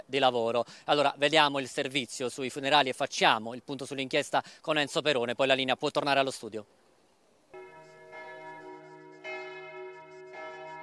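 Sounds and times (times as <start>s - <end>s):
speech: 0.1s - 6.8s
church bells ringing at a funeral: 7.5s - 10.8s.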